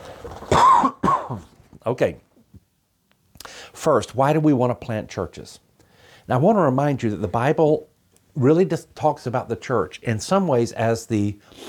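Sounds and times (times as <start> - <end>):
person coughing with a throaty rasp: 0.5 - 1.5
speech: 1.8 - 2.2, 3.8 - 5.6, 6.3 - 11.6.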